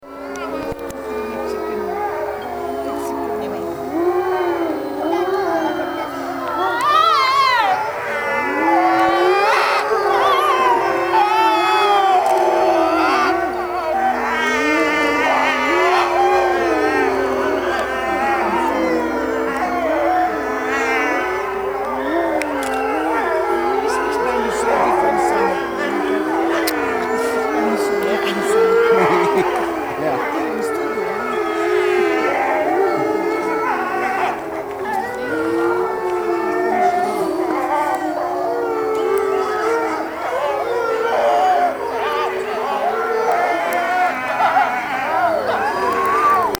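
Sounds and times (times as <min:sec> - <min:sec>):
wolf howling: 0:00.0 - 0:46.5
laughter: 0:00.1 - 0:46.5.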